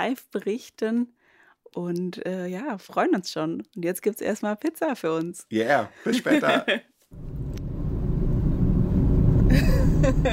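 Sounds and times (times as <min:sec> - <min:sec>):
speech: 0:00.0 - 0:07.4, 0:10.0 - 0:10.3
laughter: 0:06.0 - 0:06.9, 0:09.5 - 0:10.3
loud steady low engine rumble inside a moving car: 0:07.2 - 0:10.3.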